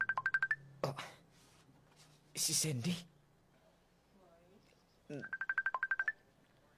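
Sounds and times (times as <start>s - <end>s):
cellphone ringing with incoming call: 0.0s - 0.7s, 5.2s - 6.2s
speech: 0.8s - 1.2s, 2.4s - 3.1s, 5.1s - 5.4s.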